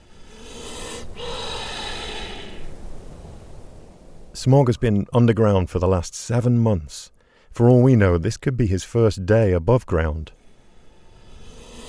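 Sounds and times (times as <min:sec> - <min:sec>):
rattlesnake breathing deeply with airy hiss: 0:00.0 - 0:03.9, 0:10.4 - 0:11.8
speech: 0:04.4 - 0:10.4.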